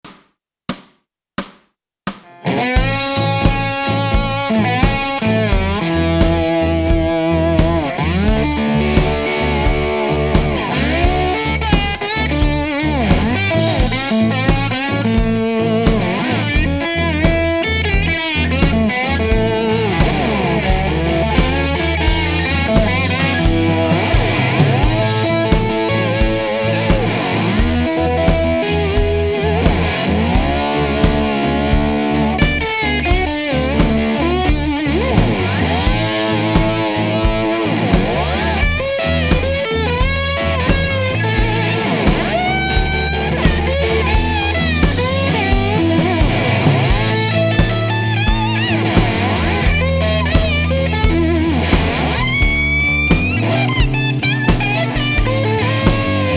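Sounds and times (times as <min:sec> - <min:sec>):
blues slide solos: 0:02.2 - 0:56.3.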